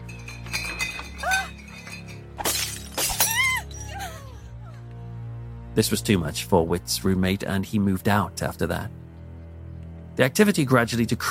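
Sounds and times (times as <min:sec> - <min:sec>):
tinkling glass shards and clinking debris: 0:00.0 - 0:04.0
wine bottles shattering against a hard wall: 0:00.0 - 0:04.0
speech: 0:05.8 - 0:09.0, 0:10.2 - 0:11.2.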